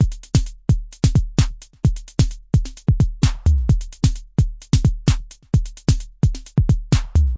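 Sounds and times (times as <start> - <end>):
analog drum loops and breaks: 0.0 - 7.3.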